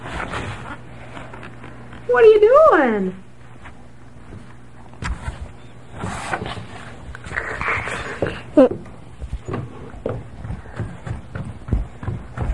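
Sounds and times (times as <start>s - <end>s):
speech: 2.1s - 3.2s
footsteps thudding across a hard floor: 3.6s - 12.5s.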